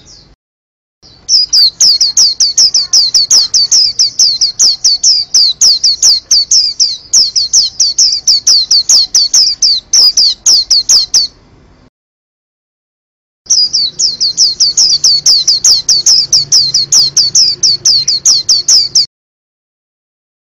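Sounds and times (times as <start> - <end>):
white-eye singing: 1.0 - 11.4, 13.5 - 19.1.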